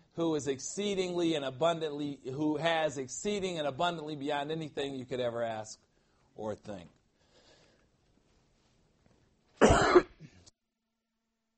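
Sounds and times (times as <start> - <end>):
speech: 0.2 - 7.0
soft rustle or breath: 7.1 - 9.4
person coughing loudly: 9.6 - 10.5.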